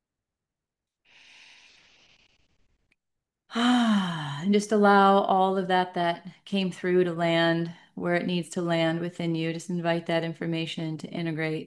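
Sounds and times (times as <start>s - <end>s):
slow deep breath in during a guided relaxation exercise: 1.0s - 2.8s
speech: 3.6s - 3.8s, 4.4s - 11.6s.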